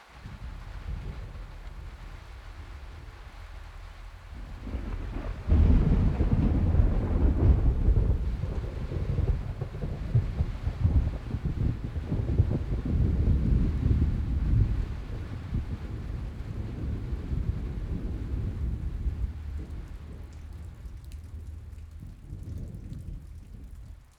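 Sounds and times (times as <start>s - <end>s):
deep roll of thunder: 0.0s - 24.1s
heavy rain pouring: 0.0s - 24.1s.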